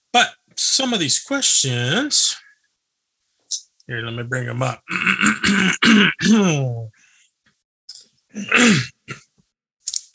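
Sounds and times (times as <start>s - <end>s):
speech: 0.2s - 2.5s, 3.9s - 7.0s, 8.4s - 9.2s
person clearing throat: 4.9s - 6.9s, 8.4s - 9.3s.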